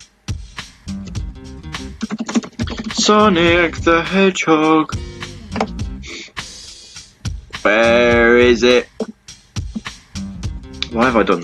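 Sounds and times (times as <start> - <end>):
typing on a computer keyboard: 2.0 - 3.0
speech: 3.1 - 5.8, 7.6 - 8.9, 10.9 - 11.4.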